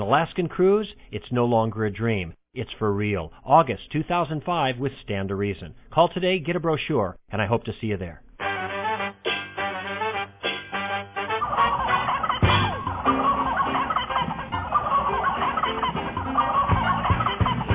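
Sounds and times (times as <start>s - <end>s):
speech: 0.0s - 8.2s
flock of turkeys squawking and gobbling frantically: 8.4s - 17.7s
short harsh honking calls: 8.4s - 17.7s.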